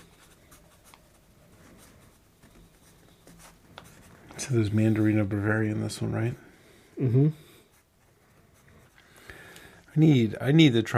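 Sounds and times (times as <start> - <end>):
pencil scratching across paper: 0.0 - 5.2, 7.7 - 9.0
speech: 4.4 - 7.4, 10.0 - 10.9.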